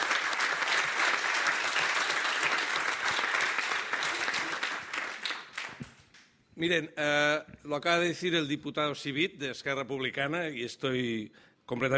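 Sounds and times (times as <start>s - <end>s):
large crowd clapping in a big room in parliament: 0.0s - 6.3s
speech: 6.6s - 11.9s.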